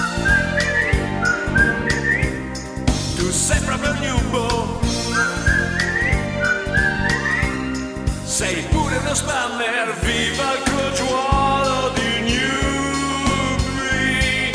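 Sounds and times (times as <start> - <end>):
person whistling a short bright melody: 0.0 - 8.4
backing music with rhythmic percussive hits and bass pulse: 0.0 - 9.4, 10.0 - 14.5.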